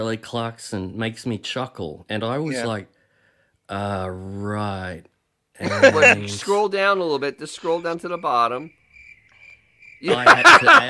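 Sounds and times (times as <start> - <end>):
speech: 0.0 - 3.0, 3.7 - 8.8, 10.0 - 10.8
laughter: 5.6 - 6.6, 10.0 - 10.8
cricket chirping sound effect: 7.6 - 10.8.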